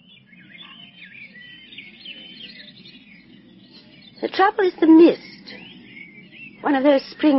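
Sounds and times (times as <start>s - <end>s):
dawn chorus of songbirds in garden: 0.0s - 7.3s
low steady outdoor rumble: 0.0s - 7.3s
speech: 4.2s - 5.3s, 6.6s - 7.3s.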